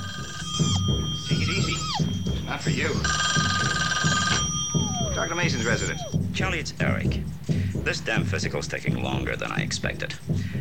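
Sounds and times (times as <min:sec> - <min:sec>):
telephone ringing in a home: 0:00.0 - 0:06.2
speech: 0:02.5 - 0:03.4, 0:05.2 - 0:10.5.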